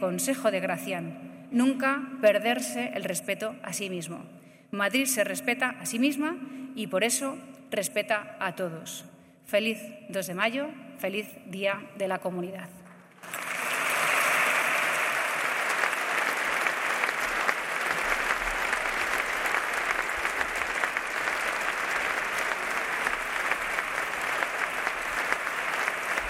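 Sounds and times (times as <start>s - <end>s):
speech: 0.0s - 13.4s
sizable audience applauding after a speech: 13.2s - 26.2s.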